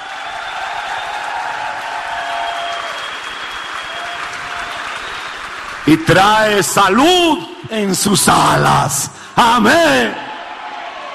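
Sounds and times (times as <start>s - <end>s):
audience applauding: 0.0s - 7.4s
speech: 5.8s - 10.2s.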